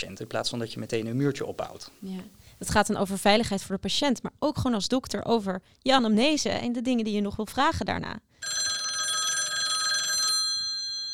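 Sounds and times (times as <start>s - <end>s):
speech: 0.0s - 8.8s
telephone bell ringing: 8.4s - 11.1s.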